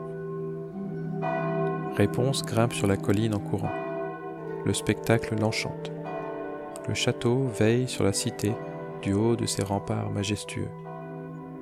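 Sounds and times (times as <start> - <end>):
citadel church bells ringing at sunrise: 0.0 - 11.6
speech: 2.0 - 3.9, 4.6 - 6.0, 6.9 - 10.8.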